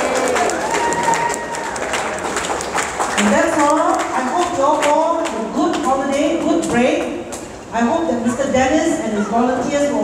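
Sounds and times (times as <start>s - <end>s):
crowd cheering: 0.0s - 3.3s
audience hands clapping: 0.0s - 7.5s
speech: 3.2s - 3.8s, 7.7s - 10.0s.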